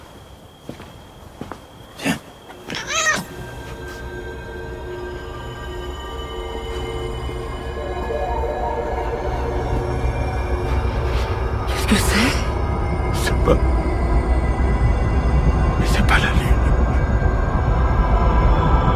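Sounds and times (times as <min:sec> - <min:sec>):
cat meowing: 0:02.7 - 0:03.4
steady low rumble: 0:03.6 - 0:18.9.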